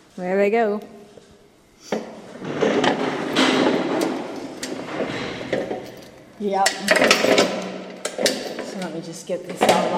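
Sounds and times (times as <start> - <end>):
speech: 0.2 - 1.0, 6.4 - 7.6, 8.8 - 9.9
heavy sliding enclosure shift door rumbling open with grinding scrape: 2.3 - 5.8
sharp metallic clanks and rattles of sliding door: 2.3 - 9.9.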